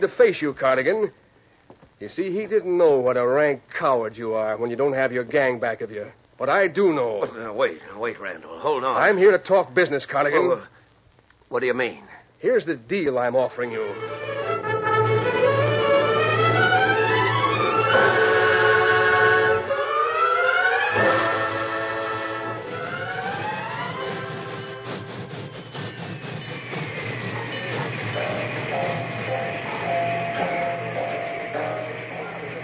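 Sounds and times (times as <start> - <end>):
speech: 0.0 - 1.2, 2.0 - 10.8, 11.5 - 14.7
loud wailing sweeping tones: 13.9 - 25.2, 25.8 - 32.6
train rumbling on rails: 22.6 - 32.6.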